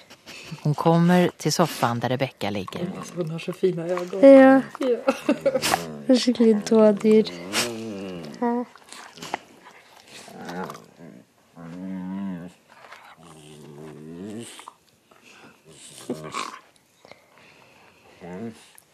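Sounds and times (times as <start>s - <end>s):
speech: 0.5s - 7.6s
dog whining and making growly vocal sounds: 4.0s - 16.7s, 18.1s - 18.7s
people laughing: 4.8s - 5.9s.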